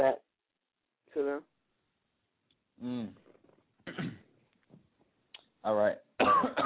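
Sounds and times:
speech: 0.0s - 0.3s, 1.2s - 1.5s, 2.8s - 3.2s, 5.6s - 6.6s
person with a nagging cough coughing: 3.9s - 4.3s, 6.2s - 6.6s.

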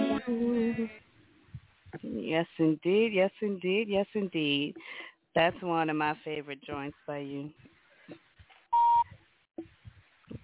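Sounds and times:
speech: 2.2s - 8.2s
single loud electronic car beep: 8.8s - 9.1s.

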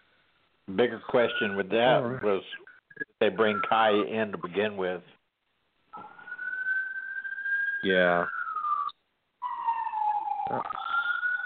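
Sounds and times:
speech: 0.7s - 5.2s, 7.8s - 8.4s, 10.5s - 10.8s
ambulance siren wailing: 6.0s - 11.4s.

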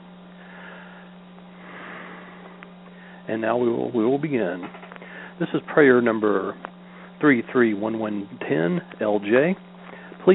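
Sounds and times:
steady low electrical hum: 0.0s - 10.3s
deep breath taken in during a guided prayer: 0.4s - 3.3s
speech: 3.3s - 4.8s, 5.4s - 10.3s.

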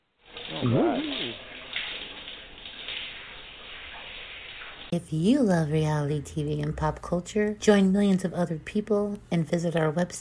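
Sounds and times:
shower spraying water: 0.0s - 5.5s
wordless vocal exclamation: 0.5s - 1.4s
speech: 0.5s - 1.5s, 5.0s - 10.1s.

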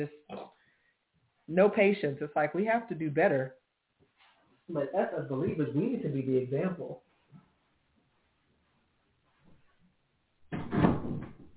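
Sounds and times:
speech: 1.5s - 3.6s, 4.7s - 7.1s
door being pushed open by a cat: 10.5s - 11.5s.

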